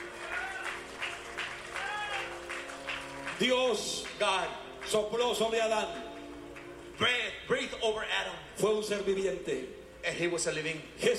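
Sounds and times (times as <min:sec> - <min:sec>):
congregation applauding: 0:00.0 - 0:07.3
speech: 0:03.4 - 0:06.0, 0:07.0 - 0:11.1.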